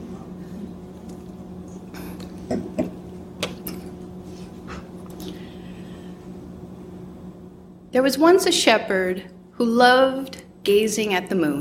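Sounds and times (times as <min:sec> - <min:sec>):
low steady hum: 0:00.0 - 0:11.5
person taking a quick sip of water with soft gulps: 0:01.9 - 0:03.0
speech: 0:02.5 - 0:02.7, 0:08.0 - 0:11.5.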